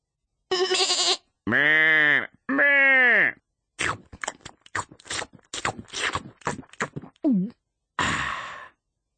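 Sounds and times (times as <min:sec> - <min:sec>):
voice imitating a hungry sheep with wavering bleats: 0:00.5 - 0:03.4
crunchy munching and clicking noises imitating nibbling grass: 0:03.8 - 0:07.3
breathy exhale: 0:08.0 - 0:08.8.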